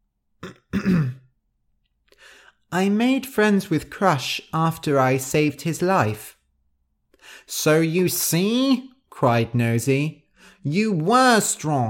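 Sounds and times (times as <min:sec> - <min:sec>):
throat clearing: 0:00.4 - 0:01.3
speech: 0:00.8 - 0:01.2, 0:02.7 - 0:06.4, 0:07.2 - 0:11.8.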